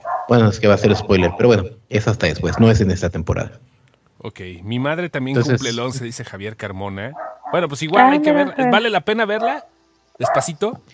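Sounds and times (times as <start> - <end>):
dog barking: 0.0 - 0.4, 7.1 - 7.7, 9.6 - 10.6
speech: 0.3 - 10.9.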